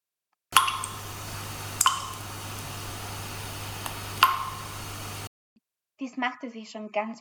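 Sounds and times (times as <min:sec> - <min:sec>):
faint hum and hiss: 0:00.5 - 0:05.3
water dripping from a tap: 0:00.5 - 0:05.3
speech: 0:06.0 - 0:07.1.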